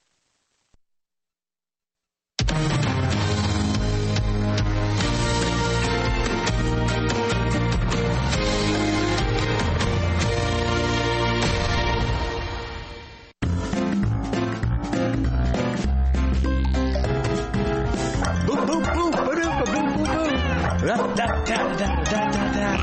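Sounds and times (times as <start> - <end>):
upbeat radio show intro music: 2.4 - 22.8
dogs barking and yipping: 17.4 - 22.8.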